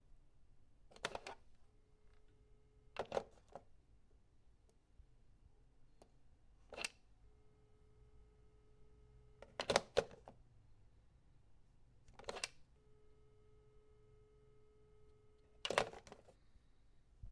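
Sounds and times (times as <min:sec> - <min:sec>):
plastic telephone picked up and hung up: 0:00.9 - 0:01.5, 0:03.0 - 0:03.7, 0:09.4 - 0:10.4, 0:12.1 - 0:12.7, 0:15.5 - 0:16.4.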